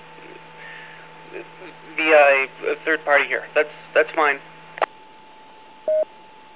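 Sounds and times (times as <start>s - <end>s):
faint steady hum on radio channel: 0.0s - 6.5s
speech: 1.3s - 4.5s
DTMF touch-tone beep dialing over radio autopatch: 5.9s - 6.1s.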